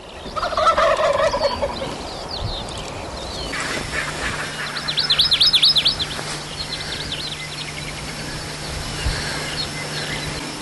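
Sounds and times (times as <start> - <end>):
steady hum of insects: 0.0 - 10.5
wild turkeys gobbling at their roost in the dark: 0.4 - 1.9, 3.5 - 10.4.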